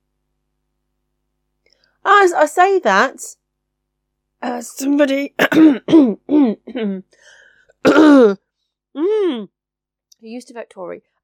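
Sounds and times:
speech: 2.0s - 3.4s, 4.4s - 8.4s, 9.0s - 9.6s, 10.2s - 11.1s
person coughing harshly: 5.4s - 7.0s, 7.8s - 8.4s
person clearing throat: 5.4s - 7.1s, 7.8s - 8.4s, 9.0s - 9.5s.

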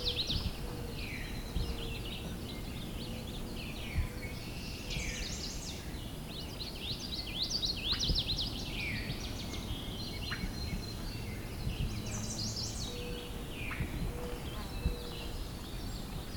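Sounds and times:
northern waterthrush singing: 0.0s - 16.3s
outdoor ambience: 0.0s - 16.3s.

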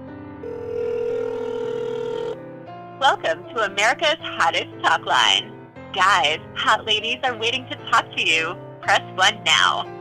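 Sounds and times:
telephone ringback tone after dialing a toll-free hotline number: 0.4s - 2.4s
speech: 3.0s - 9.9s.

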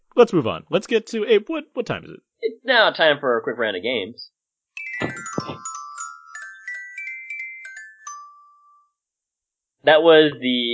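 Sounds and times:
speech: 0.2s - 4.4s, 9.8s - 10.7s
doorbell chime tune: 4.8s - 9.0s
low thumps: 5.0s - 5.8s.

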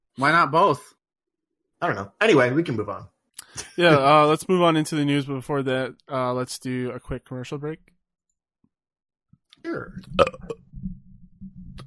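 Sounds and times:
speech: 0.2s - 1.0s, 1.8s - 3.1s, 3.8s - 8.0s, 9.6s - 10.6s
person burping: 10.1s - 10.7s.

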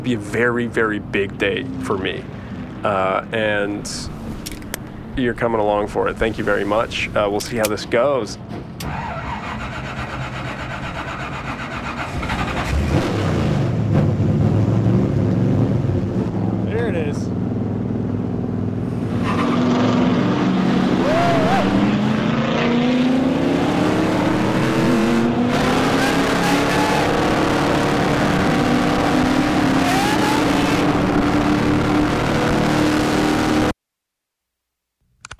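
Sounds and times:
speech: 0.0s - 4.4s, 5.2s - 9.3s
race car engine roaring at full speed: 0.0s - 33.8s.

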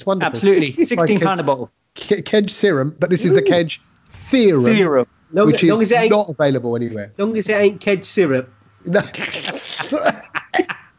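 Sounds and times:
speech: 0.0s - 10.7s
laughter: 0.2s - 1.4s, 9.0s - 10.9s
several people coughing roughly: 3.2s - 3.6s, 9.1s - 10.9s.

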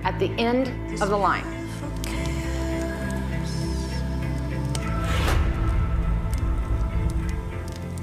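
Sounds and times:
speech: 0.2s - 1.6s
fire crackling and popping: 1.0s - 8.0s
burning flames roaring: 4.6s - 8.0s.

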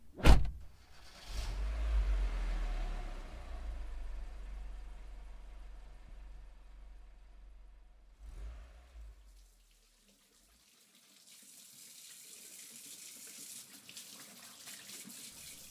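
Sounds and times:
car door slamming: 0.2s - 0.7s
car engine rumble: 0.5s - 9.9s
tap water running into a sink at home: 9.4s - 15.7s.

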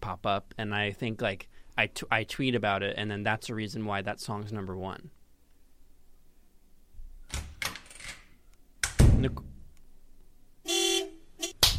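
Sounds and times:
speech: 0.1s - 5.2s, 9.2s - 9.5s
car horn honks: 10.6s - 11.6s
hand slapping a person: 11.6s - 11.7s.

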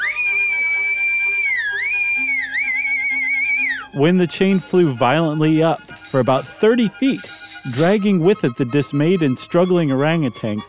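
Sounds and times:
shrill whistle: 0.0s - 8.4s
speech: 3.9s - 10.6s.

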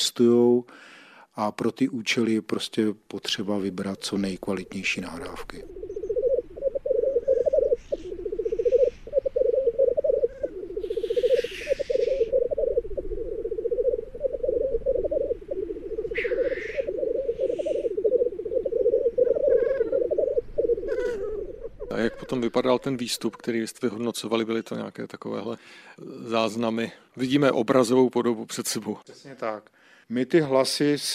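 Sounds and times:
speech: 0.2s - 6.0s, 22.5s - 31.1s
faint bird calls: 3.6s - 23.8s
black grouse cocks displaying in a bubbling chorus: 4.0s - 22.9s.

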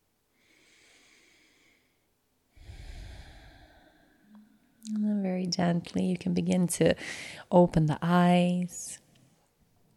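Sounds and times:
person taking a full breath during a guided meditation: 0.3s - 4.8s, 7.0s - 7.5s
speech: 4.9s - 9.0s.

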